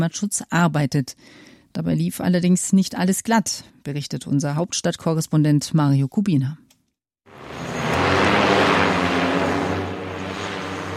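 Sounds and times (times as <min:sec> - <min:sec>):
speech: 0:00.0 - 0:06.6
interceptor drone taking off with propeller roar: 0:07.3 - 0:10.9.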